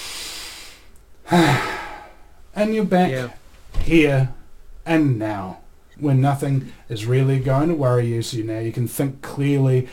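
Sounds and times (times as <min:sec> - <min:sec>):
deep breath during a calming exercise: 0:00.0 - 0:02.4
speech: 0:01.3 - 0:01.7, 0:02.6 - 0:09.9.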